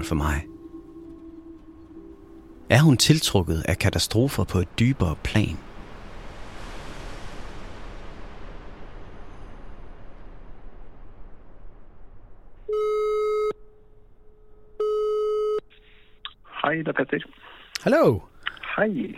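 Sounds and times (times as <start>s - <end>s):
speech: 0.0s - 0.5s, 2.7s - 5.7s, 16.7s - 19.1s
rush of noise: 0.0s - 12.7s
telephone ringing tone for a call from Denmark: 12.7s - 13.6s, 14.8s - 15.7s.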